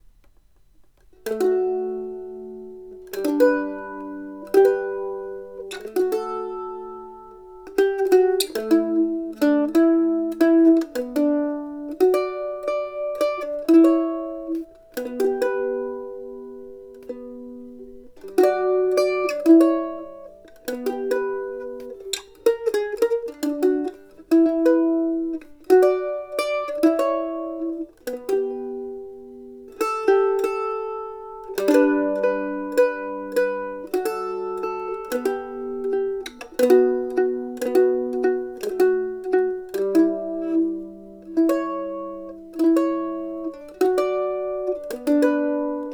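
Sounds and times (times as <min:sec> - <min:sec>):
dry mandolin: 0:00.0 - 0:45.9.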